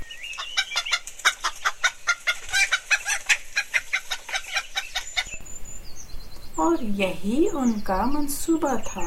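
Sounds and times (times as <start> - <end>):
hens clucking: 0.3 - 5.4
speech: 6.7 - 9.0.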